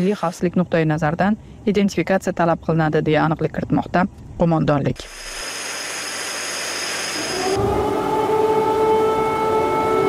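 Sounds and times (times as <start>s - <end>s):
speech: 0.0s - 5.4s
air raid siren wailing over Kyiv during a Russian drone attack: 7.2s - 10.0s.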